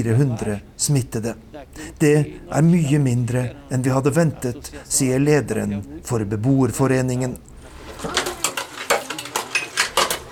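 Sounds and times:
speech: 0.0s - 8.2s
dishes being washed: 7.6s - 10.3s
pots and cutlery clinking together: 7.7s - 10.3s.

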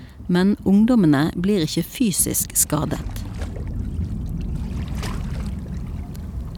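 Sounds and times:
water sloshing against a small rowing boat with a low rumble: 0.0s - 6.5s
speech: 0.3s - 3.3s
oars dipping into water and splashing: 1.5s - 6.5s.

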